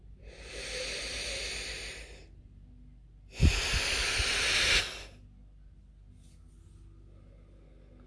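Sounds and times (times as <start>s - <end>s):
person exhaling during a guided breathing exercise: 0.2s - 2.2s, 3.4s - 5.2s
person inhaling deeply during a guided breathing exercise: 0.2s - 2.3s, 3.3s - 5.2s.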